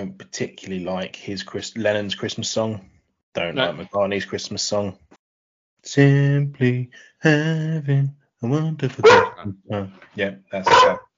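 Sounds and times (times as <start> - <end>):
speech: 0.0 - 5.1, 5.8 - 11.0
dog barking: 9.0 - 9.4, 10.6 - 11.1.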